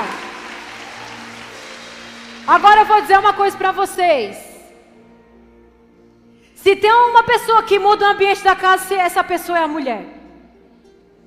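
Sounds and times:
crowd applauding: 0:00.0 - 0:03.1
speech: 0:02.5 - 0:04.4, 0:06.6 - 0:10.2.

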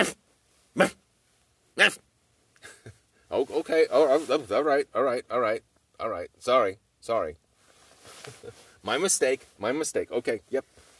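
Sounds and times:
speech: 0:00.0 - 0:00.2, 0:00.8 - 0:01.0, 0:01.8 - 0:02.0, 0:03.3 - 0:07.4, 0:08.2 - 0:10.8
person imitating a dog barking: 0:00.0 - 0:01.0, 0:01.8 - 0:02.0.

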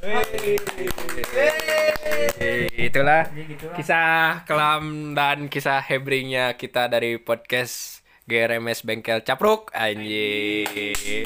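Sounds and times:
speech: 0:00.0 - 0:01.6, 0:02.8 - 0:11.2
irregular hand clapping: 0:00.0 - 0:03.7, 0:10.6 - 0:11.2.

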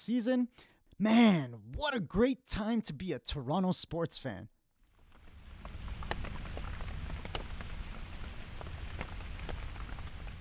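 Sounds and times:
speech: 0:00.0 - 0:04.6
rain striking a hard surface on a cold day: 0:04.8 - 0:10.3.

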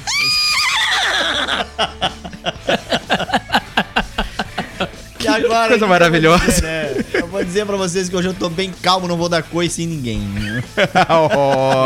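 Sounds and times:
horse neighing: 0:00.0 - 0:01.8
laughter: 0:00.0 - 0:08.6, 0:10.2 - 0:11.8
speech: 0:01.8 - 0:02.8, 0:05.5 - 0:11.8.

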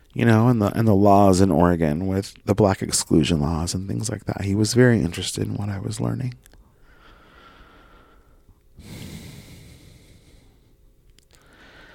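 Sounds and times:
speech: 0:00.2 - 0:06.5
slow deep breathing: 0:06.7 - 0:11.9.

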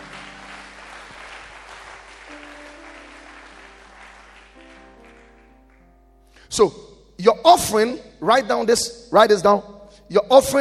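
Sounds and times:
audience applauding during a sermon: 0:00.0 - 0:06.0
preacher speaking during a sermon: 0:06.4 - 0:10.5
speech: 0:06.5 - 0:10.5.

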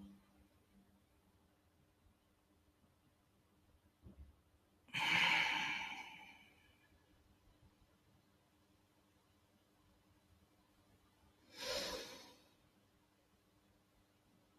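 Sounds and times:
slow deep breathing in during a guided breathing exercise: 0:04.9 - 0:06.8, 0:11.5 - 0:12.5.

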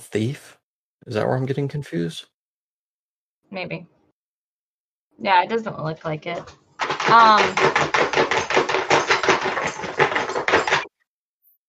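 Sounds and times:
speech: 0:00.1 - 0:02.3, 0:03.5 - 0:04.0, 0:05.2 - 0:08.8
collar of a dog scratching knocking against a wooden floor: 0:06.8 - 0:10.9.

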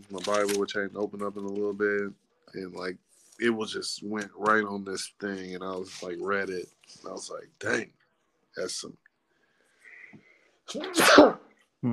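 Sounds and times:
speech: 0:00.1 - 0:08.0, 0:08.6 - 0:09.0, 0:10.1 - 0:11.9
person sneezing: 0:10.7 - 0:11.4.

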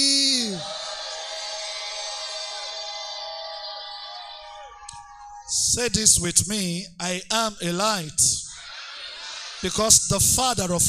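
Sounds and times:
person shouting with pitch sliding down: 0:00.0 - 0:00.6
crowd of people shouting together: 0:00.0 - 0:05.5, 0:08.5 - 0:09.8
speech: 0:05.5 - 0:08.4, 0:09.6 - 0:10.8.

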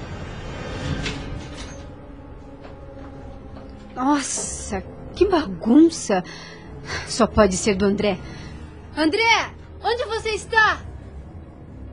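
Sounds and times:
apartment door swinging open with a soft creak: 0:00.2 - 0:03.8
speech: 0:04.0 - 0:08.3, 0:09.0 - 0:10.9.

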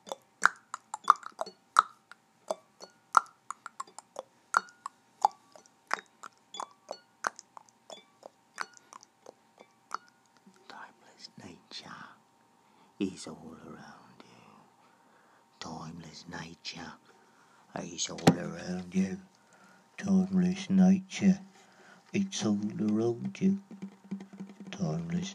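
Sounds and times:
mouth clicks mimicking a ticking clock: 0:00.0 - 0:10.6
soft breathy whispering: 0:10.6 - 0:12.2, 0:12.8 - 0:15.8
speech: 0:13.0 - 0:14.0, 0:16.2 - 0:17.1, 0:17.8 - 0:19.3, 0:20.0 - 0:21.5, 0:22.1 - 0:23.8, 0:24.8 - 0:25.3.

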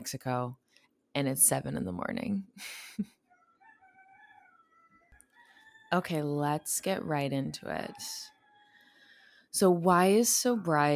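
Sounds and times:
speech: 0:00.0 - 0:00.6, 0:01.2 - 0:03.2, 0:05.9 - 0:08.3, 0:09.5 - 0:10.9
person laughing: 0:02.6 - 0:03.1
rooster crowing: 0:03.5 - 0:06.0, 0:07.8 - 0:09.3.

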